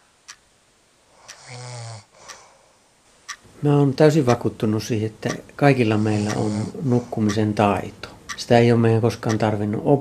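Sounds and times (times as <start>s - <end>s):
clock ticking: 0.0s - 0.5s, 1.3s - 1.5s, 2.2s - 2.4s, 3.2s - 10.0s
person snoring: 1.2s - 2.6s, 5.9s - 7.2s
speech: 3.6s - 10.0s.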